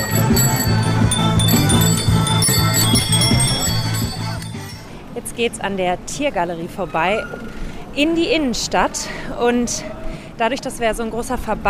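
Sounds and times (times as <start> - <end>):
music with a steady low beat: 0.0 - 4.8
many bicycle bells ringing during large group bicycle ride: 0.0 - 5.0
speech: 5.4 - 11.6.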